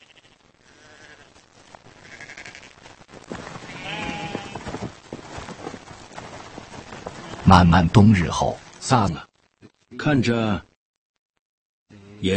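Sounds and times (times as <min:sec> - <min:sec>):
sheep and lambs bleating: 0:00.0 - 0:04.9, 0:07.1 - 0:07.6
faint rustling and movement outdoors: 0:00.0 - 0:09.9
speech: 0:07.5 - 0:09.3, 0:10.0 - 0:10.7, 0:12.2 - 0:12.3.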